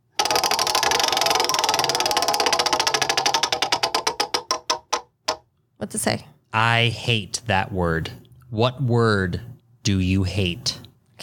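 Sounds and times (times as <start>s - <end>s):
game wheel spinning with ratchet clicks: 0.1s - 5.4s
speech: 5.8s - 11.2s.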